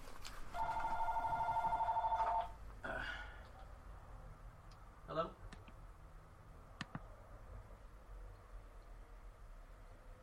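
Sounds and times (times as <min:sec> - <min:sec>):
quiet room noise: 0:00.0 - 0:10.2
cell phone ringing with a warbling electronic tone: 0:00.6 - 0:02.6.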